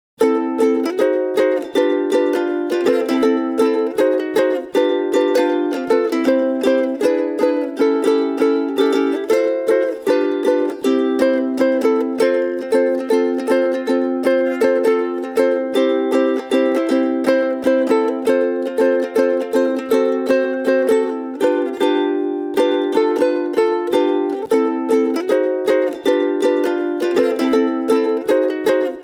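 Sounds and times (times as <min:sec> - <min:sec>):
soprano ukulele solo: 0:00.2 - 0:29.0.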